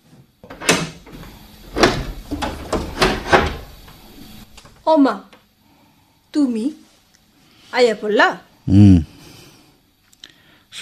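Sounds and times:
door being opened with knocks and rattles: 0:00.5 - 0:03.8
speech: 0:04.8 - 0:05.3, 0:06.3 - 0:06.8, 0:07.7 - 0:09.1.

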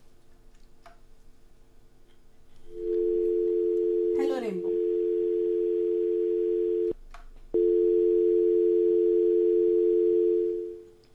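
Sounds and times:
telephone dial tone on a call that fails to connect: 0:02.7 - 0:06.9, 0:07.6 - 0:10.9.

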